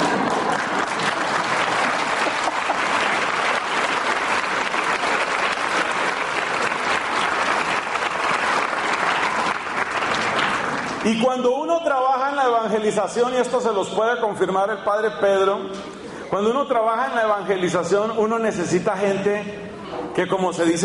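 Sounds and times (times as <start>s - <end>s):
large audience applause: 0.0s - 11.1s
speech: 11.1s - 19.6s, 20.2s - 20.8s.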